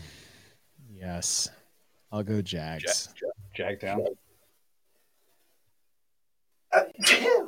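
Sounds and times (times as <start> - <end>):
speech: 1.2 - 1.6, 2.1 - 4.3
sneeze: 6.7 - 7.4.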